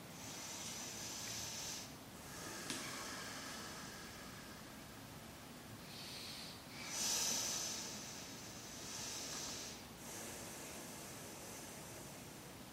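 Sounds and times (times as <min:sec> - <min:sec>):
slow deep breathing during a yoga pose: 0:00.1 - 0:05.2, 0:05.8 - 0:12.6.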